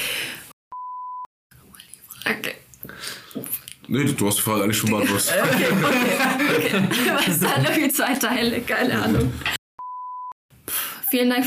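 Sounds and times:
speech: 2.2 - 2.6, 3.9 - 9.6, 11.1 - 11.4
laughter: 4.8 - 9.3
single steady electronic telephone beep: 9.8 - 10.4.

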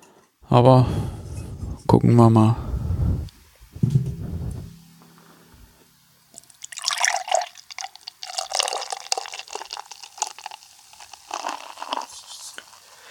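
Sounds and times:
speech: 0.5 - 1.0, 1.9 - 3.3
low thump: 2.7 - 5.9
beer brewed with cryo hops pouring into a glass: 6.4 - 12.8.

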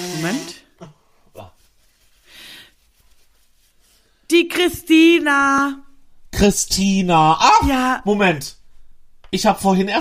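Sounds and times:
person blowing nose: 0.0 - 0.7
speech: 0.1 - 1.6, 4.3 - 5.8, 6.4 - 8.6, 9.3 - 9.9.

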